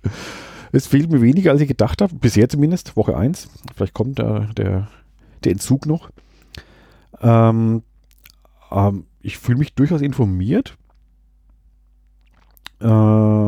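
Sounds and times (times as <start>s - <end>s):
speech: 0.0s - 7.9s, 8.7s - 10.8s, 12.8s - 13.4s
small wet lip smacks and mouth clicks: 3.6s - 3.8s, 6.4s - 6.7s, 8.0s - 8.5s, 10.8s - 12.9s.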